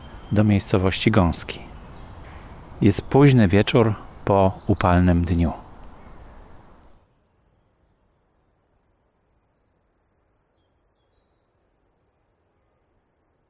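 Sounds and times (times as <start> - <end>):
speech: 0.3 - 1.7, 2.8 - 5.6
chorus of crickets chirping on a warm evening: 4.1 - 13.4.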